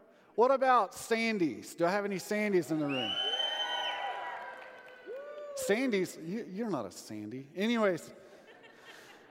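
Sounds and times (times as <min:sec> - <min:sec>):
speech: 0:00.4 - 0:03.3, 0:05.7 - 0:08.2
shrill whistles from the audience: 0:02.8 - 0:04.4
room full of people cheering and whooping: 0:02.9 - 0:05.8
laughter: 0:08.3 - 0:09.2.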